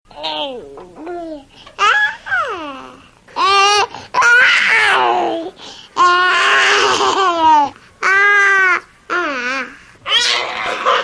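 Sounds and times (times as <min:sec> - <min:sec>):
happy baby: 0:00.1 - 0:11.0.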